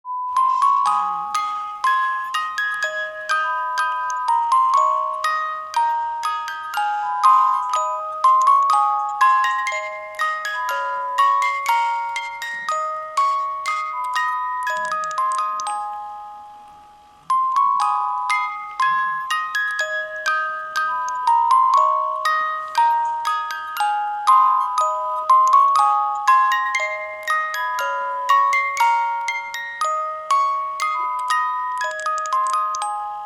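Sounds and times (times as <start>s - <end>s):
music box melody: 0.1s - 33.2s.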